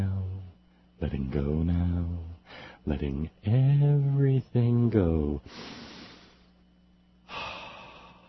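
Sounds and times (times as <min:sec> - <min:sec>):
speech: 0:01.1 - 0:01.9, 0:02.8 - 0:05.8
slow deep relaxation breathing: 0:02.4 - 0:02.8, 0:05.4 - 0:06.6, 0:07.2 - 0:08.2.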